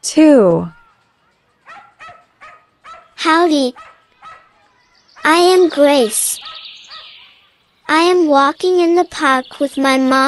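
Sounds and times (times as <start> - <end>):
speech: 0.0 - 0.8, 3.2 - 3.9, 5.2 - 6.6, 7.9 - 10.2
dog barking short sharp yaps while being walked: 1.6 - 4.6, 6.4 - 7.4.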